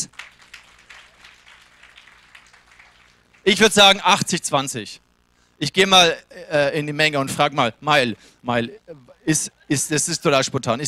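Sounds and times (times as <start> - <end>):
audience clapping loudly: 0.0 - 3.6
speech: 3.4 - 5.0, 5.6 - 10.8.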